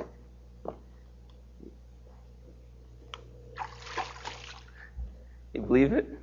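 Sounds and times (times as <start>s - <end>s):
water splashing in a baptismal tank: 3.6s - 4.8s
speech: 5.7s - 6.2s.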